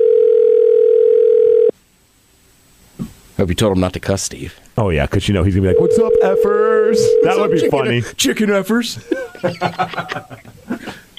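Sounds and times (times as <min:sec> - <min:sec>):
ringback tone of an outgoing telephone call to a shop: 0:00.0 - 0:01.7, 0:05.7 - 0:07.8
speech: 0:03.4 - 0:11.0
laughter: 0:09.0 - 0:11.1.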